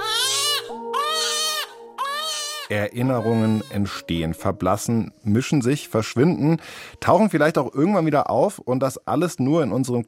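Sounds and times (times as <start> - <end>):
baby crying: 0.0 - 4.4
speech: 2.7 - 10.0.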